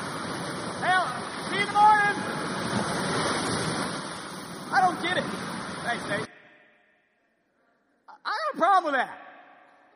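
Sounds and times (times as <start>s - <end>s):
ocean waves sleep sound: 0.0s - 6.3s
speech: 8.8s - 9.2s.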